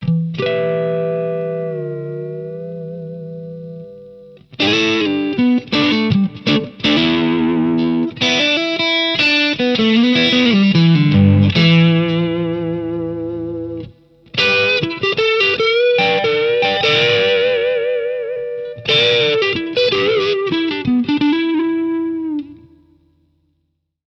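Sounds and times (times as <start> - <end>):
electric guitar through pickups: 0.0 - 22.9.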